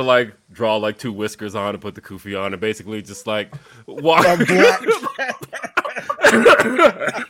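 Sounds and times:
speech: 0.0s - 5.5s, 6.3s - 7.2s
chuckling and breathy voiced sounds: 3.6s - 7.2s
rough cough: 4.1s - 7.2s.

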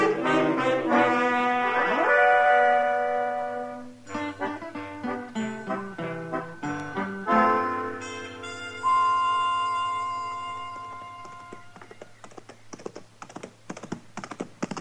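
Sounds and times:
held musical chord: 0.0s - 11.8s
horse hooves clip-clopping: 10.6s - 14.7s.

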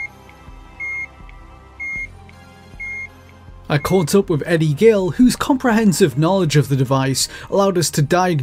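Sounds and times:
electronic alarm beep from a small speaker of a handheld accessory: 0.8s - 1.2s, 1.8s - 2.2s, 2.8s - 3.1s, 3.7s - 4.0s
speech: 3.7s - 8.4s.

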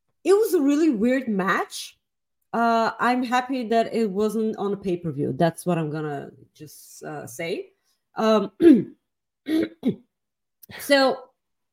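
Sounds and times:
speech: 0.2s - 10.1s, 10.7s - 11.3s
person clearing throat: 8.6s - 10.1s
person coughing: 8.6s - 10.1s.

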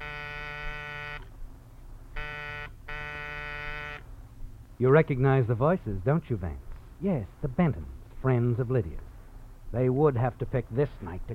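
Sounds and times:
front door buzzer harsh electric drone: 0.0s - 1.3s, 2.2s - 4.0s
speech: 4.8s - 9.1s, 9.7s - 11.3s.

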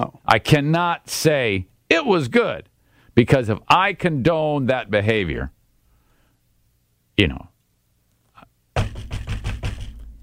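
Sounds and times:
speech: 0.0s - 5.6s, 7.2s - 7.5s
heavy knocking on a door: 8.8s - 10.0s.

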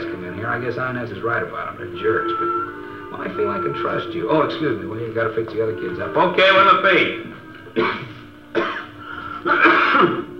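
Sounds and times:
speech: 0.5s - 8.1s
laughter: 3.2s - 10.3s
person clearing throat in rough gravelly bursts: 7.7s - 10.3s.

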